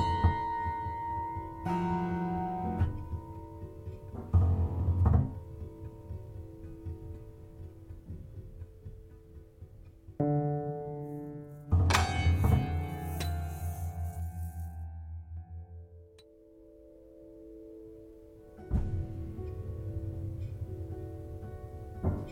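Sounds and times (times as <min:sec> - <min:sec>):
prepared piano struck in clusters with bright buzzing overtones: 0:00.0 - 0:22.3.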